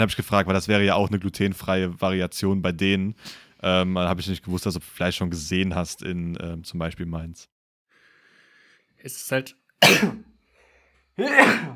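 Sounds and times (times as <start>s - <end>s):
speech: 0.0s - 7.5s, 9.0s - 10.3s, 11.2s - 11.7s
person sneezing: 9.8s - 10.3s, 11.2s - 11.7s.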